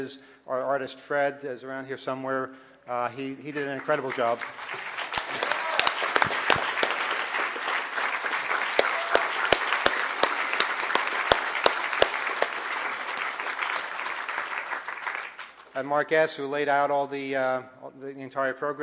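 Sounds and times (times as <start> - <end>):
speech: 0.0 - 5.4, 15.8 - 18.8
large audience applauding: 3.6 - 15.8.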